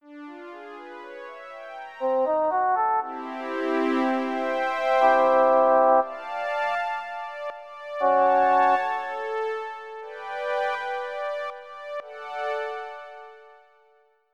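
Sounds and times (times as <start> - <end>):
solo melody: 2.0 - 10.4
synth pad: 3.0 - 10.4.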